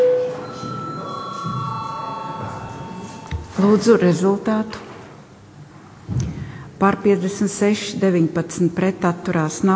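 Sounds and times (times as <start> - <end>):
parliamentary electronic voting bell ringing: 0.0 - 4.0
speech: 3.6 - 4.9, 6.8 - 9.7.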